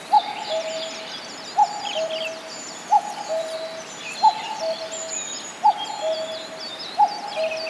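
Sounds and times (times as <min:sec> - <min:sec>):
common cuckoo paired calls: 0:00.0 - 0:07.6
small birds twittering: 0:00.0 - 0:07.6.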